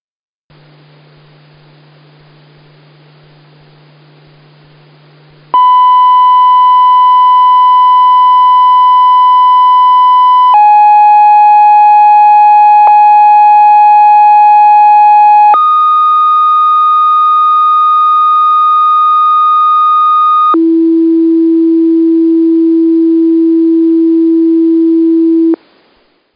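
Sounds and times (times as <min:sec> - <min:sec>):
fixed FM tones: 0:05.5 - 0:25.6.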